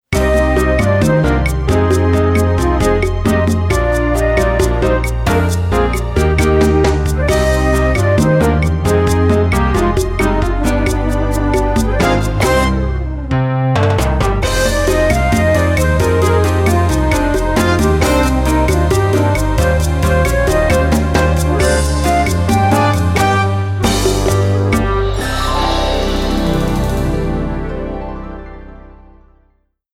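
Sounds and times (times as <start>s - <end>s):
Lowrey organ bossa nova rhythm: 0.1s - 28.3s.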